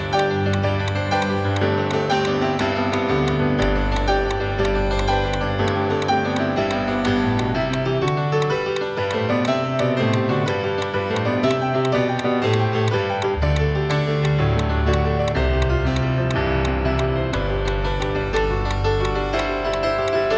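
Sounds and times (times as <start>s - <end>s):
metronome ticking at 175 beats per minute: 0.0s - 20.3s
deep bass line: 3.1s - 8.2s, 12.7s - 20.2s.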